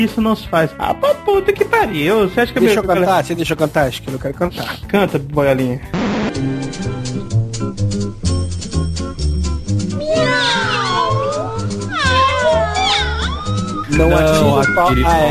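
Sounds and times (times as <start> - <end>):
speech: 0.0 - 6.9, 14.0 - 15.2
music: 0.0 - 15.2
cat meowing: 10.0 - 14.0.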